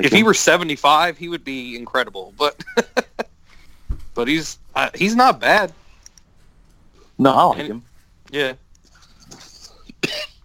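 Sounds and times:
speech: 0.0 - 3.1, 4.2 - 5.8, 7.2 - 8.6
quiet room noise: 0.0 - 10.4
laughter: 2.5 - 3.3
single sharp cough close to the mic: 9.7 - 10.4.

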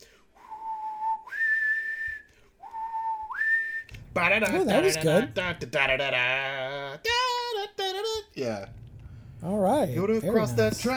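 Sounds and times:
person whistling a two-note phrase: 0.3 - 4.0
speech: 4.2 - 7.2, 8.4 - 8.8, 9.4 - 10.9.

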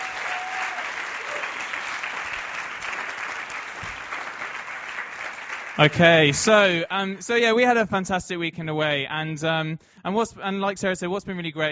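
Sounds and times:
audience applauding: 0.0 - 6.3
speech: 5.8 - 11.7.

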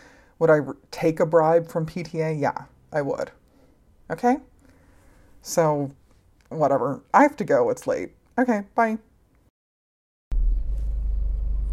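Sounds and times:
speech: 0.4 - 3.4, 4.1 - 4.5, 5.4 - 9.1
car engine and road drone heard from inside the cabin while driving: 10.3 - 11.7.

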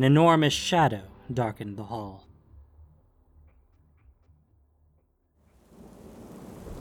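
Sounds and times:
speech: 0.0 - 2.3
heavy rain: 5.6 - 6.7
distant rolling thunder: 5.7 - 6.7.

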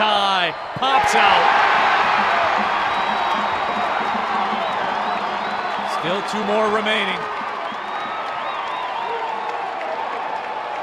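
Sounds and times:
speech: 0.0 - 1.7, 6.2 - 7.4
packed basketball arena crowd roaring and cheering: 0.0 - 10.8
whistles and whoops from arena crowd: 2.2 - 10.6.

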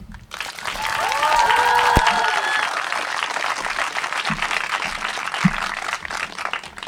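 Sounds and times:
audience applause for a performer after a text reading: 0.3 - 6.8
cheers: 0.3 - 6.8
whistles: 0.4 - 6.8.

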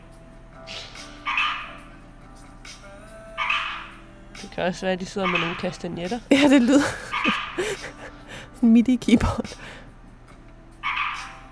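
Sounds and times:
frog croaking: 1.2 - 1.8, 3.4 - 4.0, 5.2 - 5.8, 7.0 - 7.8, 10.8 - 11.5
speech: 4.5 - 9.4
laughter: 5.2 - 9.8.

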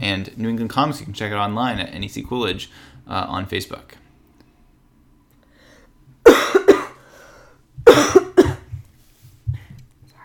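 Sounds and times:
speech: 0.0 - 4.0
harsh breathy cough: 6.3 - 7.0, 7.8 - 8.8.

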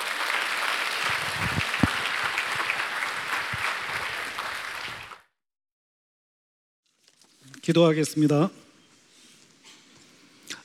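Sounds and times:
church audience applauding to welcome a pastor: 0.0 - 5.3
speech: 7.7 - 8.6.

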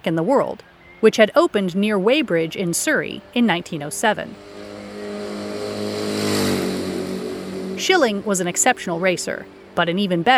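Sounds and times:
speech: 0.0 - 4.6, 7.8 - 10.3
490cc Norton motorcycle engine revving: 3.2 - 9.8.

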